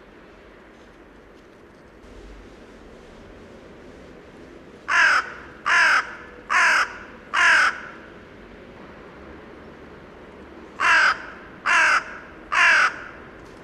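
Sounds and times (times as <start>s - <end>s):
carrion crow Corvus corone giving harsh raspy caws: 4.9s - 8.0s, 10.8s - 13.2s.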